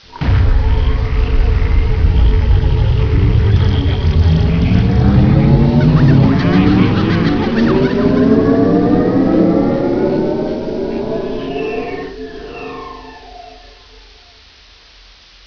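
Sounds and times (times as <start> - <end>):
power machines: 0.0 - 14.6.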